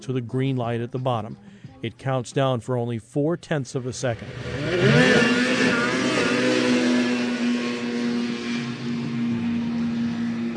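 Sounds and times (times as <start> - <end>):
speech: 0.0 - 5.3
snowmobiles accelerating off the line in a drag race: 4.0 - 10.5.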